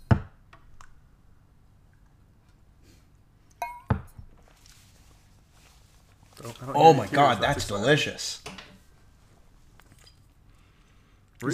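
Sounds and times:
shot glasses of tequila clinking in a toast: 0:03.6 - 0:04.1
speech: 0:06.4 - 0:08.6.

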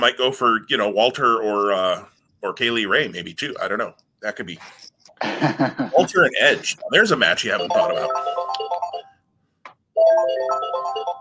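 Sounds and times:
speech: 0:00.0 - 0:08.6, 0:10.0 - 0:11.1
laughter: 0:05.2 - 0:07.2
mobile phone ringtone electronic melody: 0:06.8 - 0:09.2, 0:10.0 - 0:11.1.

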